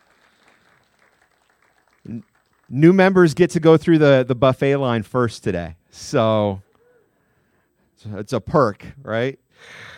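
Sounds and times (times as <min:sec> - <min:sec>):
audience applauding: 0:00.0 - 0:03.4
speech: 0:02.1 - 0:06.7, 0:08.0 - 0:09.9.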